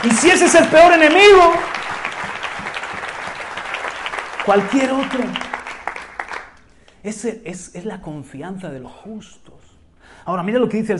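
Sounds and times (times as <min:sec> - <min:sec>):
speech: 0:00.0 - 0:01.8, 0:04.5 - 0:05.5, 0:07.0 - 0:09.6, 0:10.2 - 0:10.9
audience applause: 0:00.0 - 0:06.6.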